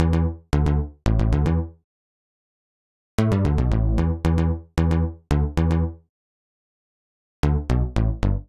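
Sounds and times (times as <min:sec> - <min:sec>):
bassline in C major at 113 bpm: 0:00.0 - 0:01.8, 0:03.2 - 0:06.0, 0:07.4 - 0:08.4.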